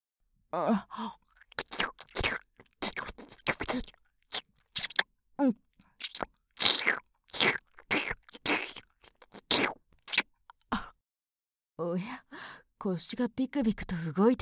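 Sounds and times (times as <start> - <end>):
speech: 0.5 - 1.8, 3.7 - 4.0, 5.4 - 5.6, 11.8 - 12.2, 12.8 - 14.4
mouth nibbling and chewing on an ear: 1.2 - 5.1, 5.8 - 10.6.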